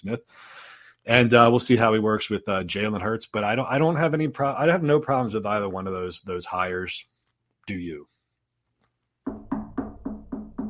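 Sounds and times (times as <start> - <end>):
speech: 0.0 - 7.1, 7.7 - 8.1
knocking on wood: 9.2 - 10.6.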